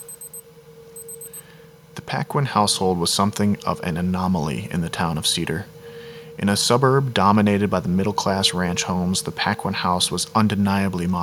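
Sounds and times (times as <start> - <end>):
digital wristwatch beeping in high-pitched chirps: 0.0 - 0.4, 1.0 - 1.4
steady low hum: 0.0 - 9.4
speech: 2.0 - 5.8, 6.4 - 11.2.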